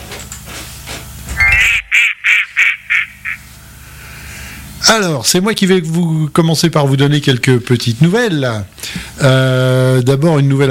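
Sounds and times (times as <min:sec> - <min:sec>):
duck quacking loudly with nasal calls: 0:01.4 - 0:03.4
speech: 0:04.9 - 0:10.6.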